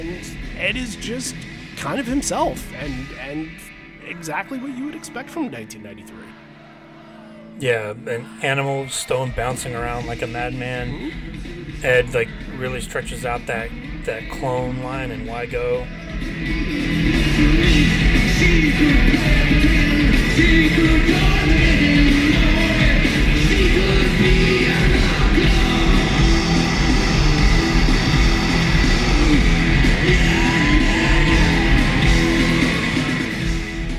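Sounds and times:
distorted guitars: 0.0s - 6.2s, 8.9s - 33.9s
speech: 0.0s - 6.4s, 7.6s - 19.6s
loud dense live rock band: 15.8s - 33.9s
singer's primal scream in live rock song: 18.3s - 33.6s.

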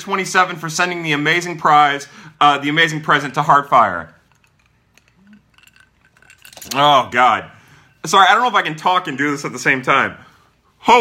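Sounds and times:
speech: 0.0s - 4.2s, 6.7s - 10.2s, 10.8s - 11.0s
glasses of Crown XO clinking in a toast: 4.2s - 8.7s.

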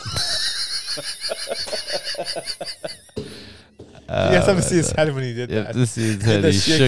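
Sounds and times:
laughter: 0.0s - 6.8s
speech: 2.4s - 2.7s, 4.2s - 6.8s
person imitating a cow mooing: 4.1s - 5.0s.

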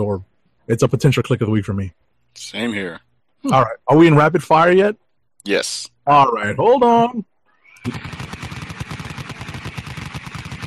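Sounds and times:
speech: 0.0s - 8.2s
Gatling gun firing: 7.8s - 10.6s.

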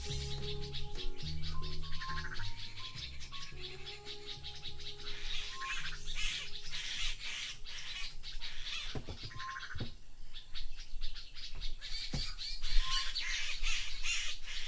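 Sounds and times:
steady low hum of other creatures: 0.0s - 7.8s
dawn chorus of birds in Botswana: 0.0s - 14.6s.

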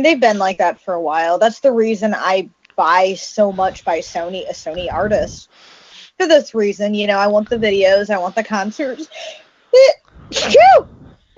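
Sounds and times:
speech: 0.0s - 11.3s
loud sneeze: 10.2s - 11.0s.

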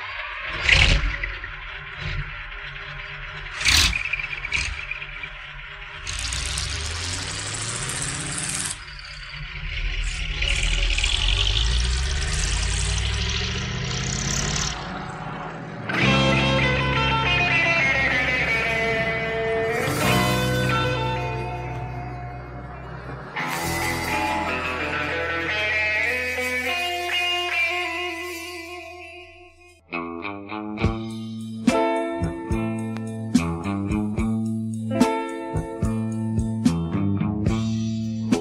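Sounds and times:
truck engine rumbling and idling with rising revs: 0.2s - 26.0s
music with sustained tones: 14.8s - 38.3s.

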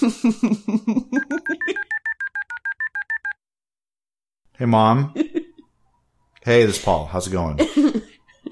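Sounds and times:
speech: 0.0s - 1.2s, 4.6s - 5.3s, 6.4s - 8.1s
telephone keypad dialing tones: 1.2s - 3.4s.

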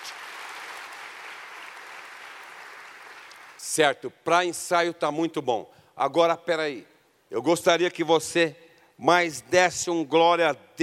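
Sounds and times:
audience applauding loudly: 0.0s - 3.7s
speech: 3.6s - 10.8s.

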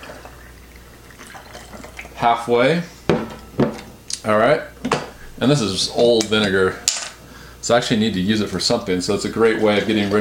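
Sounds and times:
filtered water pouring from a pitcher into a bottle: 0.0s - 2.2s
speech: 2.2s - 3.0s, 4.2s - 4.7s, 5.4s - 6.9s, 7.7s - 10.2s.

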